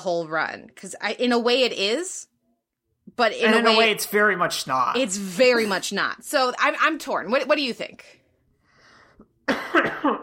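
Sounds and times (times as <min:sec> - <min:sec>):
speech: 0:00.0 - 0:02.3, 0:03.1 - 0:08.2, 0:09.5 - 0:10.2
faint breath: 0:08.5 - 0:09.4
harsh coughing fit: 0:09.4 - 0:10.2.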